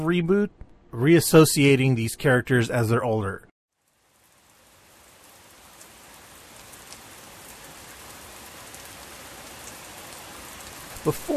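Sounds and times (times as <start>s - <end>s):
speech: 0.0s - 3.5s, 11.0s - 11.3s
heavy torrential rain pouring: 3.8s - 11.3s.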